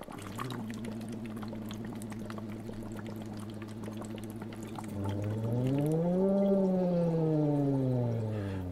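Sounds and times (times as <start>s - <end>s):
steady breathy blown tone sliding in a glissando: 4.4s - 8.7s.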